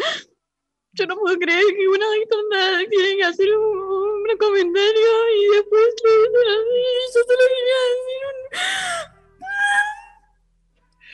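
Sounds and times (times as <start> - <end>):
speech: 1.0 - 9.1
woman fake crying with a high whimpering wail: 6.4 - 10.2.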